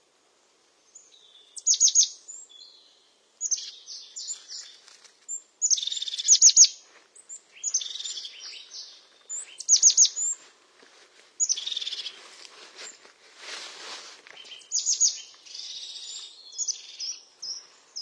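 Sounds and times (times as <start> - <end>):
European crested tit singing: 0.9 - 10.4, 11.4 - 12.2, 14.4 - 18.0.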